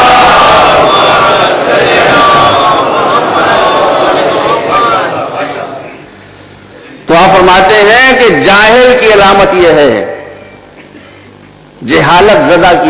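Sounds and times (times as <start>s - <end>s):
large audience reciting salawat in unison: 0.0s - 6.0s
speech: 7.5s - 10.1s, 11.9s - 12.8s.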